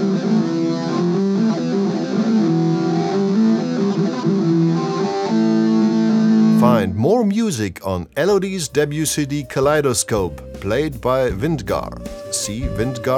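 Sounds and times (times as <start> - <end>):
heavily distorted electric guitar playing low thick death metal chords: 0.0 - 7.0
speech: 6.8 - 13.1.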